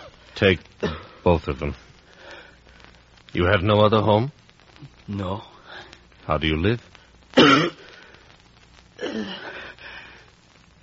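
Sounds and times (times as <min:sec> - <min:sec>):
speech: 0:00.4 - 0:01.8, 0:03.3 - 0:05.5, 0:06.3 - 0:07.8, 0:09.1 - 0:09.5
person coughing: 0:00.8 - 0:01.2, 0:07.4 - 0:07.8.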